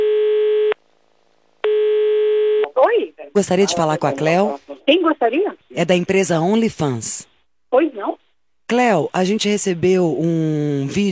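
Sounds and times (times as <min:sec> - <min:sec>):
telephone ringback tone while placing a call: 0:00.0 - 0:00.8, 0:01.6 - 0:02.6
speech: 0:03.4 - 0:07.9, 0:08.7 - 0:11.1.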